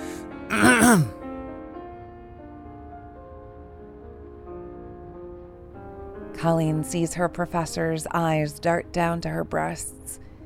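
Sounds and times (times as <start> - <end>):
man seated at a desk clearing his throat: 0.5 - 1.1
speech: 0.5 - 1.2, 6.4 - 10.2
faint steady music: 2.8 - 10.4.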